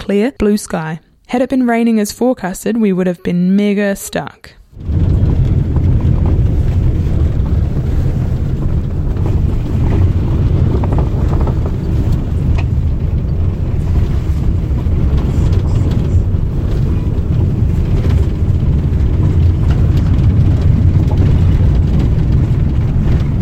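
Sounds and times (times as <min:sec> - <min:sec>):
speech: 0:00.1 - 0:05.0
van bumps and rattles: 0:04.7 - 0:23.3
big two-wheel-drive van driving along a gravel road through native bush: 0:04.8 - 0:23.3.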